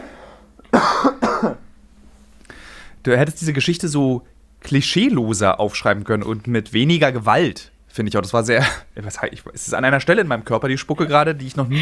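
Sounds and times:
person coughing to clear saliva from the throat: 0:00.6 - 0:01.6, 0:11.0 - 0:11.8
speech: 0:03.0 - 0:11.8.

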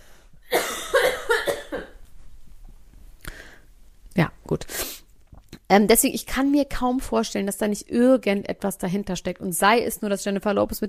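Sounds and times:
person coughing: 0:00.5 - 0:02.0
speech: 0:05.7 - 0:10.8.

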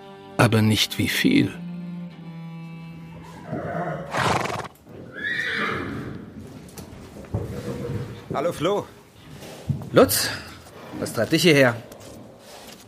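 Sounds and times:
speech: 0:00.4 - 0:01.6, 0:08.4 - 0:09.0, 0:09.9 - 0:10.4, 0:11.0 - 0:11.9
hooves clip-clopping on hard ground: 0:02.6 - 0:12.8
horse neighing in shrill quavering whinnies: 0:03.1 - 0:06.4.

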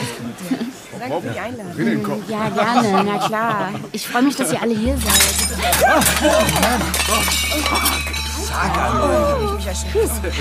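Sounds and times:
laughter: 0:00.0 - 0:10.3
several voices talking loudly: 0:00.0 - 0:10.3
speech: 0:00.4 - 0:10.3
tray of plates crashing down and shattering: 0:04.9 - 0:09.3.

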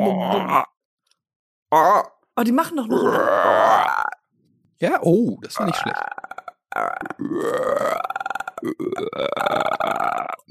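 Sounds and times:
long loud human burp imitating a frog's croak: 0:00.0 - 0:00.8, 0:01.7 - 0:02.2, 0:02.9 - 0:04.2, 0:05.6 - 0:10.4
speech: 0:00.2 - 0:00.7, 0:01.7 - 0:04.2, 0:04.8 - 0:10.4.

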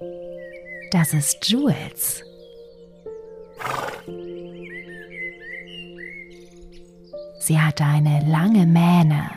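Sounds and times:
small birds chirping: 0:00.0 - 0:09.3
speech: 0:00.9 - 0:02.3, 0:07.5 - 0:09.3
brown horse whinnying in a small paddock on a large farm: 0:03.6 - 0:04.1.

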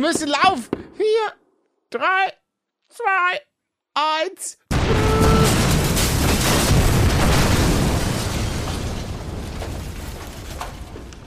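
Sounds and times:
speech: 0:00.0 - 0:05.0
explosion: 0:04.7 - 0:11.2
scattered crackling debris: 0:04.7 - 0:11.2.

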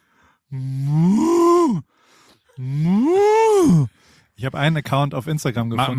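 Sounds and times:
speech: 0:00.5 - 0:00.9, 0:02.6 - 0:02.9, 0:04.4 - 0:05.9
person imitating a cow with long loud moo: 0:00.5 - 0:01.8, 0:02.6 - 0:03.9.

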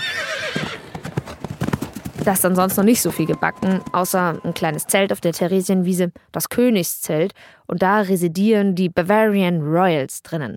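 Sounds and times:
horse whinnying at a horse race on the Theresienwiese: 0:00.0 - 0:01.0, 0:02.5 - 0:05.1
horse hooves galloping at a horse race on the Theresienwiese: 0:00.0 - 0:05.7
speech: 0:02.3 - 0:10.5.

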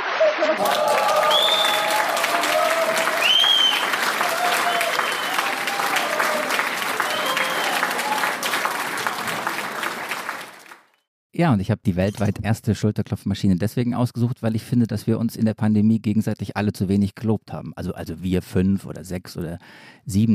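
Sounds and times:
cheers: 0:00.0 - 0:10.8
crowd applause sound effect from a machine: 0:00.0 - 0:11.0
speech: 0:00.4 - 0:01.0, 0:11.4 - 0:20.3
whistles: 0:01.2 - 0:02.0, 0:03.1 - 0:05.8, 0:07.0 - 0:08.3.

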